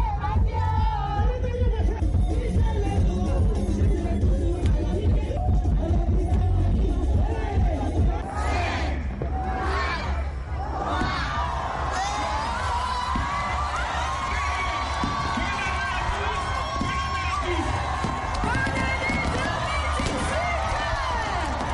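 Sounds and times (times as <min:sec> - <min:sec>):
large crowd singing along at a concert: 0:00.0 - 0:11.7
booming concert music: 0:00.0 - 0:21.7
concert crowd cheering: 0:07.2 - 0:21.7.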